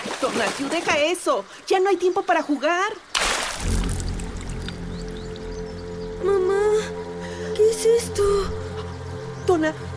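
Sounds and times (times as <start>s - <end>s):
water splashing in a river: 0.0s - 1.7s, 3.0s - 5.5s
speech: 0.2s - 3.8s, 7.8s - 8.6s, 9.5s - 9.9s.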